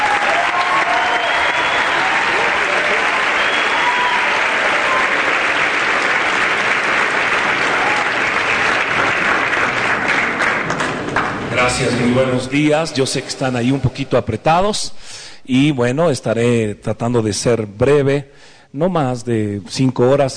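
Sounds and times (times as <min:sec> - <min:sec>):
faint voices and cheers: 0:00.0 - 0:06.2, 0:07.5 - 0:08.5
audience applause welcoming a speaker: 0:00.0 - 0:12.2
speech: 0:11.8 - 0:20.3.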